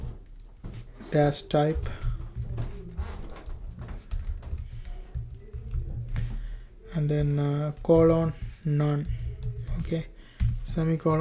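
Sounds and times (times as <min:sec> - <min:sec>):
speech: 0:01.1 - 0:02.0, 0:07.0 - 0:09.2, 0:09.9 - 0:10.1, 0:10.7 - 0:11.1
typing CSS code on a computer keyboard: 0:01.8 - 0:06.4, 0:07.2 - 0:10.6.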